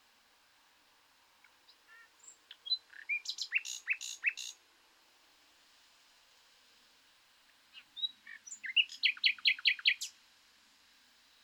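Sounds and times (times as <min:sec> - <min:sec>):
background hiss: 0:00.0 - 0:11.4
Common nightingale Luscinia megarhynchos singing: 0:01.4 - 0:04.6, 0:07.7 - 0:10.2.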